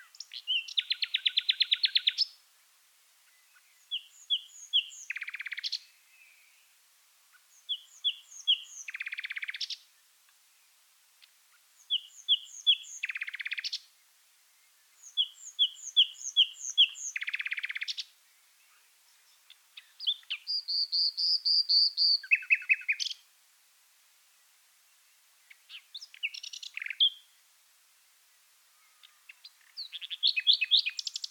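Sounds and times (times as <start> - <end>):
common nightingale singing: 0.0 - 23.3, 24.3 - 27.4, 28.2 - 31.3.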